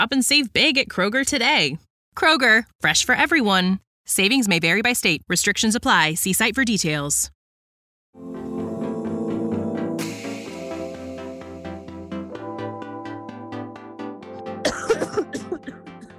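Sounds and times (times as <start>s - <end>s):
speech: 0.0s - 7.4s, 8.2s - 8.6s
steady tonal music-like background: 8.2s - 16.1s
person coughing harshly: 14.6s - 16.1s.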